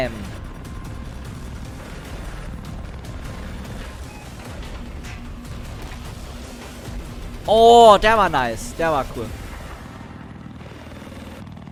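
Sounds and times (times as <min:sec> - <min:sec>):
speech: 0:00.0 - 0:00.3, 0:07.5 - 0:09.4
video game helicopter rotor chopping with engine whine: 0:00.0 - 0:10.8.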